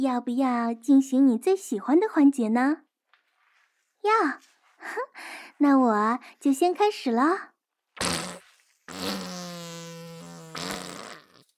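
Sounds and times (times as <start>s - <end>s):
speech: 0.0s - 2.9s, 4.0s - 8.1s
loud fart released while bathing: 8.0s - 11.5s.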